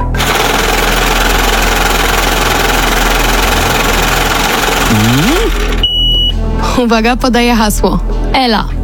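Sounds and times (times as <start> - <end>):
lottery drawing machine whirring and rattling: 0.0 - 5.9
speech: 5.1 - 5.6, 6.8 - 8.8.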